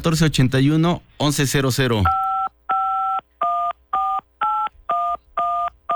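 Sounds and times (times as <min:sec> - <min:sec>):
speech: 0:00.0 - 0:02.2
telephone keypad DTMF dialing tones: 0:02.1 - 0:05.9.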